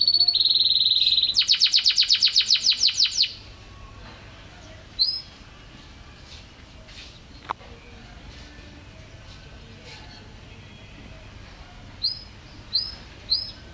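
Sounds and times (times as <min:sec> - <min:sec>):
canary singing vigorously in a fast pulsing trill: 0:00.0 - 0:03.6, 0:04.6 - 0:05.4, 0:12.0 - 0:13.7.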